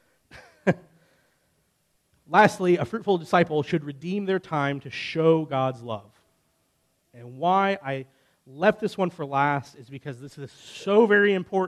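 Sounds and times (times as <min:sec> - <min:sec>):
person clearing throat: 0:00.3 - 0:00.8
person letting out a sharp cough: 0:00.3 - 0:00.8
speech: 0:00.7 - 0:00.9, 0:02.3 - 0:06.2, 0:07.2 - 0:11.6.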